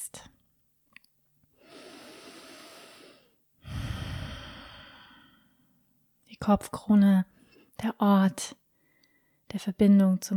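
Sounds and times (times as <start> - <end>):
deep breathing during a guided meditation: 1.6 - 5.7
speech: 6.4 - 8.6, 9.5 - 10.3.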